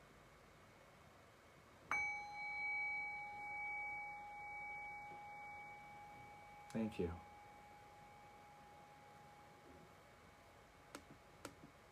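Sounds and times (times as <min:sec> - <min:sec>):
single bell struck to close a session: 0:01.9 - 0:08.7
speech: 0:06.7 - 0:07.3.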